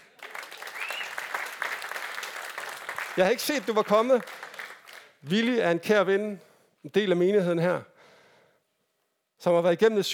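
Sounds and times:
audience applause: 0:00.0 - 0:05.2
speech: 0:03.2 - 0:04.4, 0:05.2 - 0:07.9, 0:09.4 - 0:10.1.

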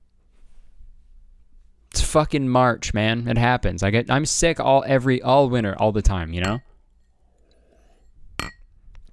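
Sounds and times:
speech: 0:02.1 - 0:06.7
glasses clinking together in a toast: 0:06.4 - 0:06.7, 0:08.4 - 0:08.7.

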